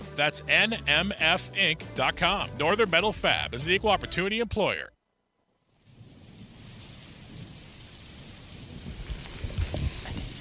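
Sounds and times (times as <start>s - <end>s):
speech: 0.2s - 5.0s
low thunder rumbling: 5.8s - 10.3s
steady rain: 5.8s - 10.3s.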